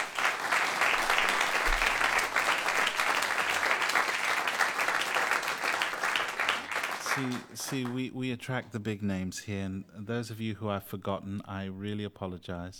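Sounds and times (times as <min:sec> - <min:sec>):
concert audience applause: 0:00.0 - 0:08.0
speech: 0:07.2 - 0:12.7.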